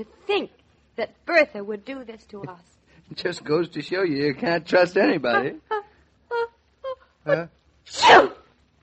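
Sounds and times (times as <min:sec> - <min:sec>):
speech: 0:00.0 - 0:05.8, 0:07.2 - 0:08.4
person sneezing: 0:07.9 - 0:08.5.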